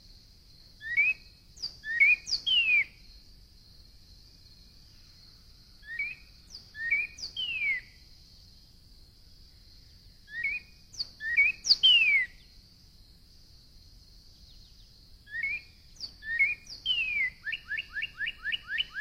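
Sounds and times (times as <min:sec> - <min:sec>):
Northern cardinal song: 0:00.8 - 0:03.0, 0:05.8 - 0:08.0, 0:10.2 - 0:12.5, 0:14.5 - 0:18.9.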